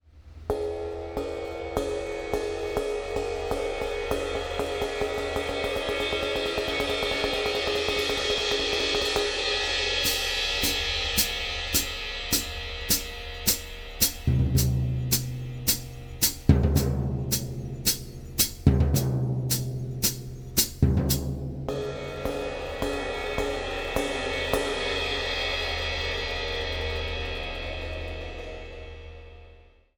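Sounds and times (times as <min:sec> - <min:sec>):
cymbals: 0:00.5 - 0:28.9
drum: 0:10.0 - 0:25.5.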